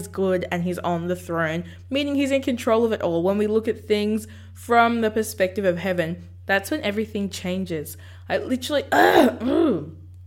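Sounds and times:
speech: 0.0s - 10.0s
low steady hum: 0.0s - 10.2s
throat clearing from someone with something caught in the throat: 8.9s - 10.0s.

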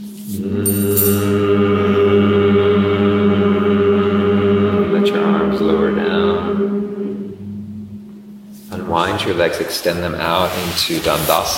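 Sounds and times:
speech: 0.3s - 1.2s, 9.3s - 11.5s
low hum on the exhale from a yoga twist: 0.4s - 9.4s.

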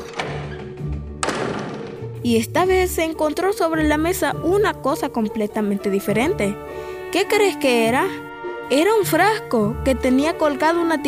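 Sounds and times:
door swinging shut with a solid thunk: 0.0s - 2.2s
speech: 2.2s - 11.0s.

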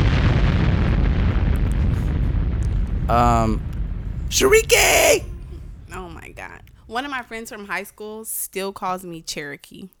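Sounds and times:
explosion sound effect: 0.0s - 7.0s
speech: 3.1s - 5.3s, 6.4s - 9.9s.

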